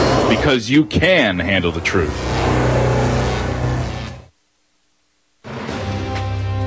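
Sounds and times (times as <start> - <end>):
car engine revving: 0.0 - 4.3
speech: 0.3 - 2.4.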